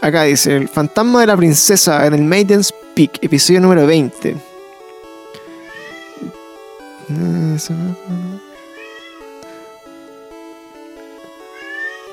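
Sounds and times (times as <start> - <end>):
speech: 0.0 - 4.5, 7.1 - 8.3
music: 0.0 - 12.1
pet cat meowing: 5.6 - 6.3, 8.7 - 9.3, 11.5 - 12.1.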